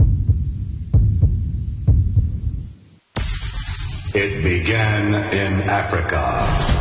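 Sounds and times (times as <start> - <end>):
deep thumping heartbeat sound effect: 0.0 - 3.4
speech: 4.2 - 6.7.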